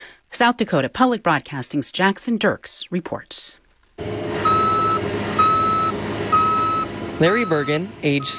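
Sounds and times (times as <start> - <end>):
speech: 0.4 - 3.4, 7.2 - 8.3
cargo truck engine rumble while being loaded with soybeans: 4.0 - 8.3
loud reversing beeps: 4.4 - 8.3.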